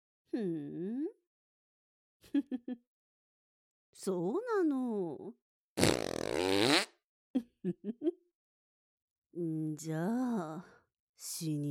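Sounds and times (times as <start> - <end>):
speech: 0.3 - 0.9, 2.3 - 2.9, 4.0 - 5.4, 7.4 - 8.2, 9.4 - 11.6
long loud wavering fart with sputtering puffs: 5.8 - 6.9.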